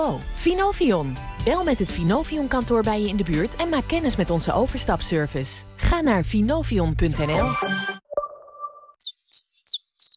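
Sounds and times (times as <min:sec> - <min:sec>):
speech: 0:00.0 - 0:07.9
chiffchaff singing: 0:09.0 - 0:10.1.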